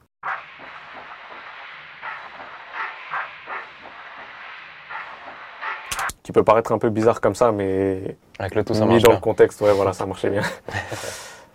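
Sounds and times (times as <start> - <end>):
dense hissing wash of near white noise: 0.2 - 6.5
speech: 6.3 - 11.2.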